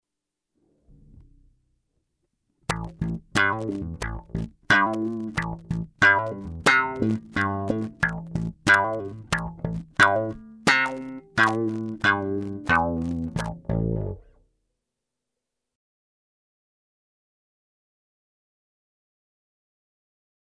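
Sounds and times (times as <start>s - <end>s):
snarling wah guitar: 2.7s - 14.3s.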